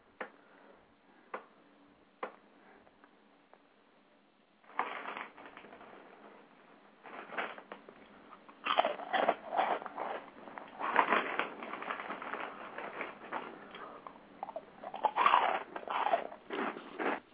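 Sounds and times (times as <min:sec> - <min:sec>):
person chewing with loud crunching: 0:08.4 - 0:17.3.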